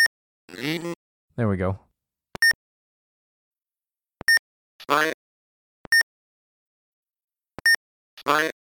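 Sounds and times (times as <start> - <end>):
speech: 0.6 - 1.9, 4.9 - 5.2, 8.3 - 8.6
short high-pitched electronic timer beeps: 2.4 - 2.6, 5.9 - 6.1, 7.6 - 7.8.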